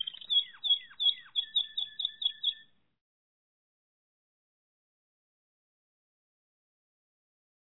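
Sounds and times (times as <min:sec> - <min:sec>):
Malinois Waterslager canary singing whistled notes: 0:00.0 - 0:02.7.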